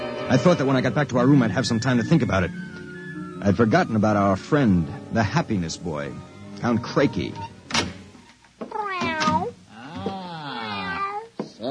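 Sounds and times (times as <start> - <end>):
speech: 0.3 - 7.5
cat meowing: 8.7 - 11.6.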